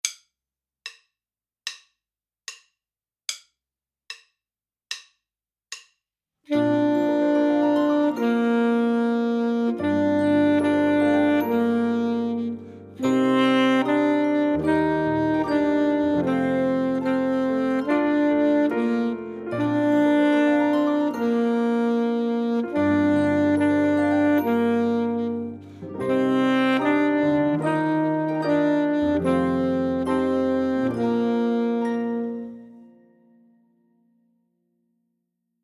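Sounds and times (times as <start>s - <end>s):
full saxophone piece: 6.5s - 33.7s.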